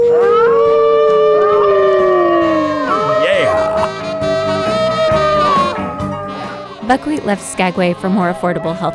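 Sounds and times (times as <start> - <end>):
man imitating a wolf howl: 0.0 - 6.7
speech: 6.9 - 8.9.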